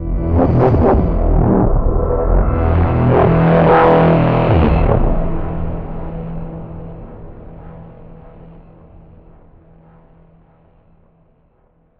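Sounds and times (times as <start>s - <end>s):
vault warp effect: 0.0s - 8.8s.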